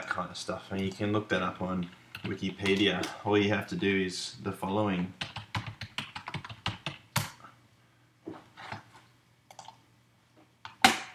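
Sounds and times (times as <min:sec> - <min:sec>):
speech: 0:00.2 - 0:05.3
rapid typing of a web search on a computer keyboard: 0:05.2 - 0:07.3, 0:09.5 - 0:09.8.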